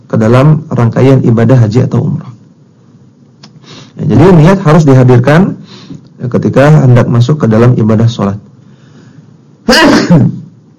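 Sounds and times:
speech: 0.1 - 2.3, 4.0 - 8.5, 9.7 - 10.4
person sneezing during a religious lecture: 9.7 - 10.5.

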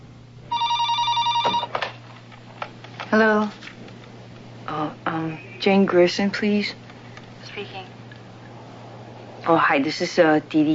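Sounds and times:
telephone ringing during a call: 0.5 - 2.0
speech: 3.1 - 3.7, 5.6 - 6.8, 9.5 - 10.7.

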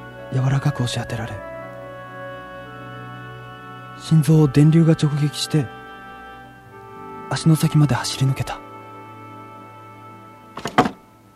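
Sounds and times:
speech: 0.3 - 1.5, 4.0 - 5.8, 7.3 - 8.6
chair bumped as someone sits up: 10.6 - 11.0.

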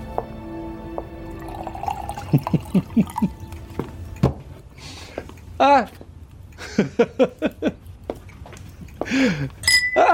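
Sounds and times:
wine glugging into a glass: 1.3 - 3.7
speech: 2.3 - 3.4, 5.6 - 6.0, 6.8 - 7.8, 9.1 - 9.6.

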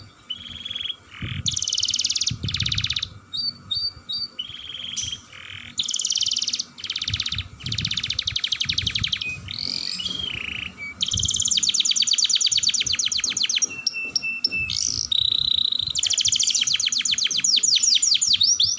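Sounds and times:
canary singing long rolling trills: 0.0 - 18.7.

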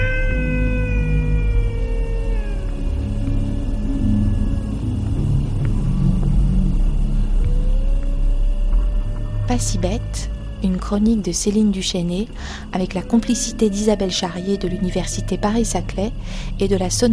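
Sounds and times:
dingo howls: 0.0 - 5.0
constant low rumbling background: 0.0 - 17.1
speech: 9.5 - 17.1.

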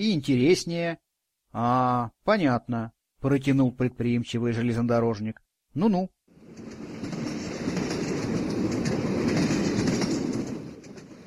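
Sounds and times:
speech: 0.0 - 6.8
freight train rolling along rails heard from inside an empty freight wagon: 6.4 - 11.2
freight train wheels clickety-clack: 6.4 - 11.2.

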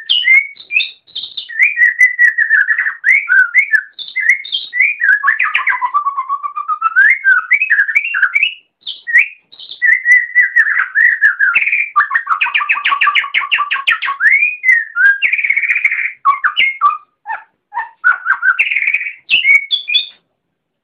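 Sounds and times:
Oriental magpie-robin long varied whistled song: 0.0 - 20.2.

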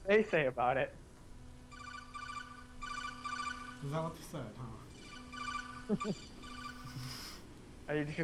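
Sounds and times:
steady low hum: 0.0 - 8.2
speech: 0.1 - 1.0, 3.8 - 4.8, 5.9 - 6.3, 7.9 - 8.2
phone ringtone playing from inside pants: 1.7 - 4.0, 4.9 - 7.4.

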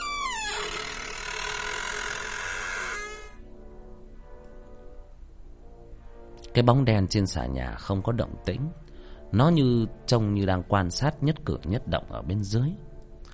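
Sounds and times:
door creaking as it is pushed slowly open: 0.0 - 3.4
speech: 6.6 - 12.9.

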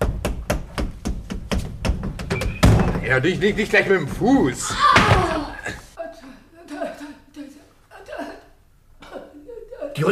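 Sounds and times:
rapid knocking on the back panel of a wardrobe: 0.0 - 3.0
speech: 3.1 - 5.2.

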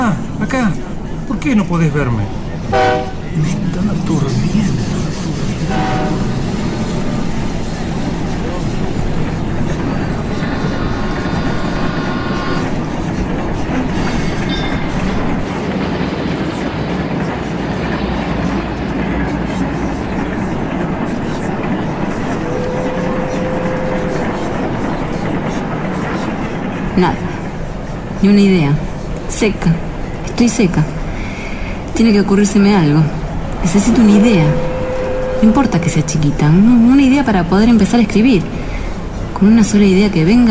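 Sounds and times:
train rolling with rumble and rattle of carriages: 0.0 - 40.4
speech: 0.5 - 5.0, 27.0 - 27.2, 28.2 - 31.0, 32.0 - 34.7, 35.4 - 38.6, 39.4 - 40.4
brief tonal sounds: 22.3 - 25.3, 33.7 - 36.8.

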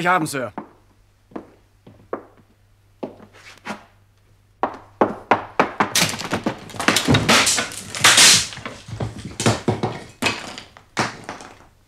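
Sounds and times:
locked wooden door being forced open with heavy blows: 5.6 - 11.6.

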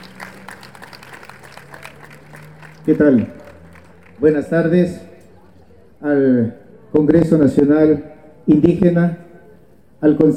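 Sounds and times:
crowd applauding at an indigenous congress gathering: 0.0 - 4.5
speech: 2.8 - 3.4, 4.2 - 5.1, 6.0 - 9.2, 10.0 - 10.3.

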